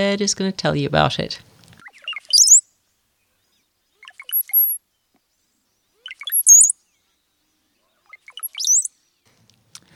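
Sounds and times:
speech: 0.0 - 1.5
brown-headed cowbird song with thin high slurred whistle: 1.9 - 2.7, 4.0 - 4.8, 6.0 - 6.8, 8.0 - 9.1.

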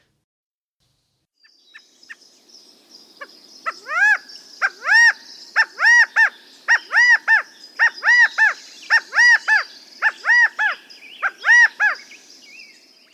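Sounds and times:
California quail song: 3.6 - 12.0.

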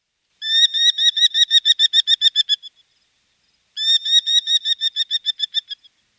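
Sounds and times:
merlin falcon calling: 0.4 - 2.8, 3.8 - 6.0.

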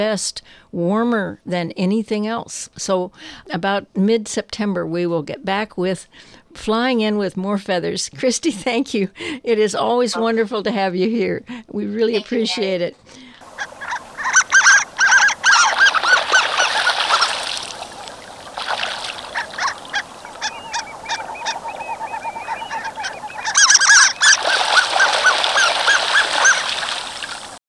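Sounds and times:
speech: 0.0 - 14.0
Harlequin ducks Histrionicus histrionicus calling: 10.0 - 10.5, 12.0 - 27.6.

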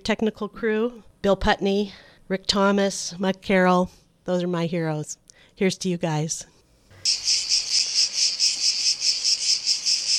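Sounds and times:
speech: 0.0 - 6.5
cicadas buzzing: 7.0 - 10.1.

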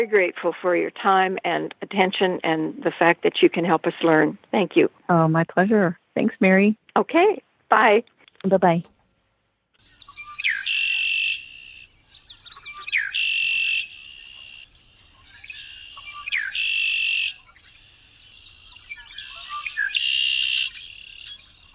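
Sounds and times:
speech: 0.0 - 8.9
Red-winged Blackbird song: 9.8 - 21.7.

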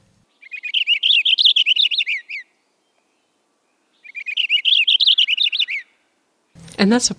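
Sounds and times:
purple finch warbling song: 0.2 - 6.0
speech: 6.8 - 7.1.

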